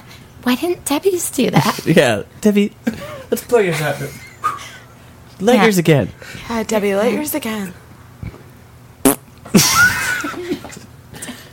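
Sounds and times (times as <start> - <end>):
speech: 0.5 - 4.3, 5.4 - 8.4, 9.5 - 10.0
sputtering flatulent blurt: 9.0 - 9.3.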